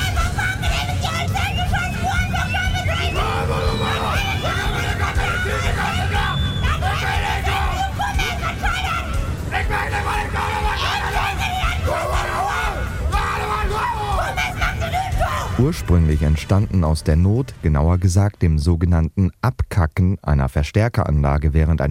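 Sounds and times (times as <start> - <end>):
many people shouting and yelling at a scream festival: 0.0 - 16.1
dense crowd roar and babble: 0.0 - 16.4
speech: 15.6 - 21.8.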